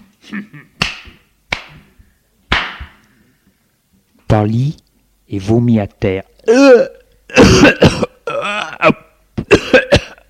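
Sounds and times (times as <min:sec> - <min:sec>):
speech: 0:00.3 - 0:00.7, 0:04.3 - 0:08.0
sharp crisp slaps on the buttocks: 0:00.8 - 0:01.9, 0:02.5 - 0:03.0.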